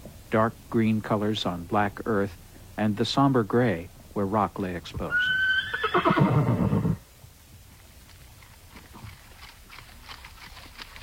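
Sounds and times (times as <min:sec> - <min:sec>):
speech: 0:00.3 - 0:06.7
hoof clops of horses walking along a wet forest trail in the Clearwater National Forest: 0:04.6 - 0:11.0
horse whinnying: 0:05.1 - 0:07.0.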